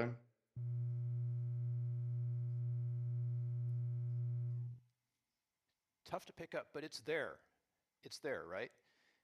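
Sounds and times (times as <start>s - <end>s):
speech: 0.0s - 0.2s, 6.1s - 8.8s
low gamma binaural beat tone: 0.6s - 4.8s.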